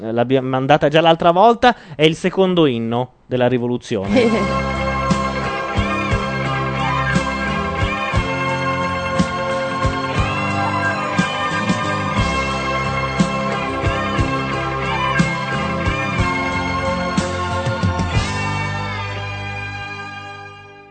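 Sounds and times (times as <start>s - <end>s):
speech: 0.0s - 4.8s
song opening with dense band arrangement: 4.0s - 20.9s
laughter: 4.1s - 6.4s
steady drum beat: 4.1s - 18.7s.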